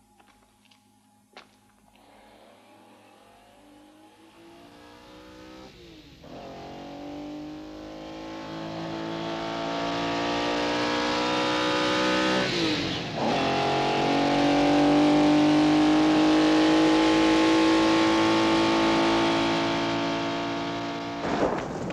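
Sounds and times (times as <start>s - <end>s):
car driving off and accelerating hard: 2.6s - 21.8s.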